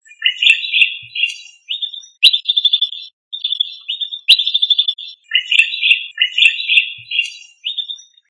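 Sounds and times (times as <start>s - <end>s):
Indonesian bird singing chattering high notes and trills: 0.0s - 8.2s.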